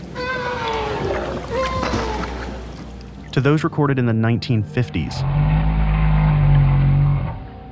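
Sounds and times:
North Atlantic right whale calls: 0.1s - 2.6s, 5.2s - 7.7s
speech: 3.4s - 5.5s.

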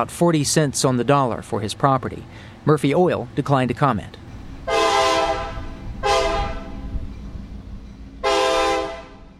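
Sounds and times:
speech: 0.0s - 4.2s
train rumbling past: 0.0s - 9.3s
train horn blasts: 4.6s - 6.9s, 8.2s - 9.3s.

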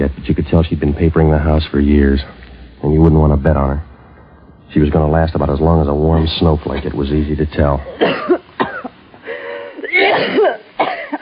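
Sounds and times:
speech: 0.0s - 3.9s, 4.7s - 8.4s
person in a rasping coughing fit: 7.8s - 11.1s
strained wheezy breaths: 9.2s - 9.9s.

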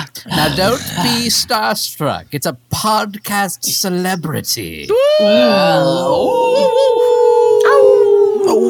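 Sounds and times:
speech: 0.4s - 7.0s
wolves howling: 5.0s - 8.6s.

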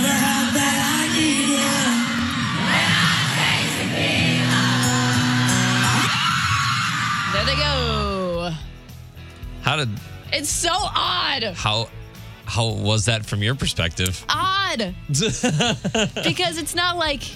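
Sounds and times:
large concert crowd screaming and cheering: 0.1s - 8.4s
speech: 9.8s - 17.3s
laughter: 15.1s - 16.7s.

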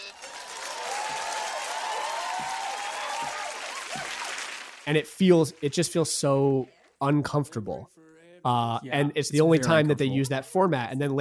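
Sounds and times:
audience voices whooping: 0.0s - 4.5s
studio audience applause: 0.0s - 7.4s
speech: 4.9s - 11.2s.

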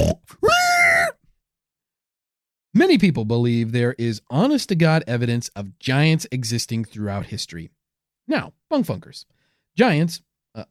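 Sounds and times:
human voice imitating a pig oinking: 0.0s - 1.2s
speech: 2.8s - 10.6s.

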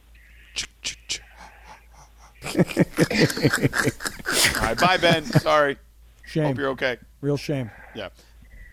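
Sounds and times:
heavy rasping breathing over phone line: 0.2s - 2.5s, 7.6s - 8.7s
laughter: 2.4s - 5.7s
speech: 2.5s - 8.3s.

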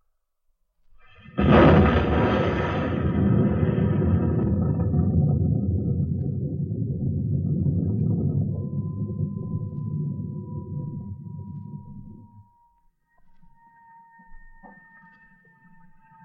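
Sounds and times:
powerful explosion with deep heavy rumble: 1.1s - 12.4s.

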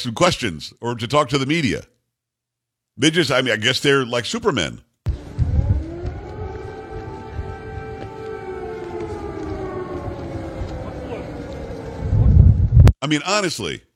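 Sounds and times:
speech: 0.0s - 1.9s, 3.0s - 4.9s, 13.0s - 13.9s
missile air raid sirens wailing in a war zone: 5.1s - 12.8s
low rumbling noise: 5.1s - 12.9s.

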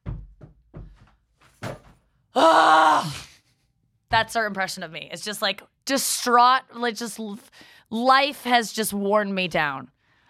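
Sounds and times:
door thumping as it swings: 1.6s - 2.0s
speech: 2.4s - 3.2s, 4.2s - 10.0s.

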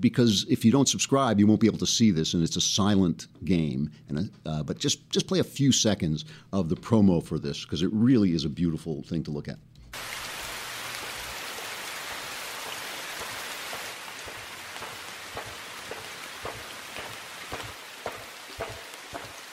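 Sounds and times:
speech: 0.0s - 10.1s
steady dense rain: 10.0s - 19.5s.

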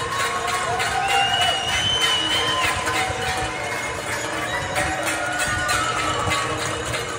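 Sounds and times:
outdoor crowd clapping, shouting and cheering to honor healthcare workers: 0.0s - 7.1s
whistles: 0.9s - 3.1s.

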